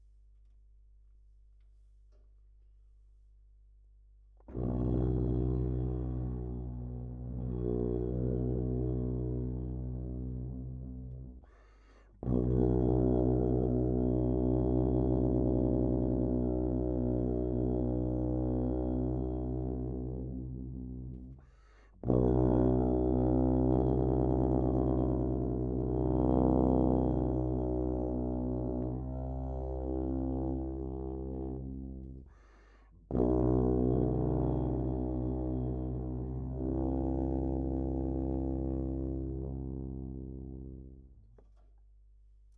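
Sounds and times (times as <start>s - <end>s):
trombone: 4.5s - 11.2s, 12.2s - 20.8s, 22.0s - 32.2s, 33.1s - 41.0s.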